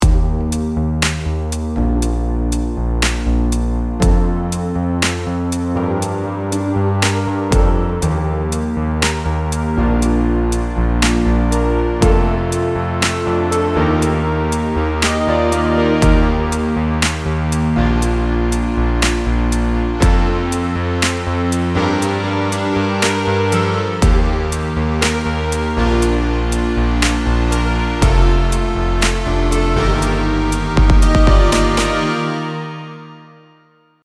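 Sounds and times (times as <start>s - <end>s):
synthwave pluck: 0.0s - 33.1s.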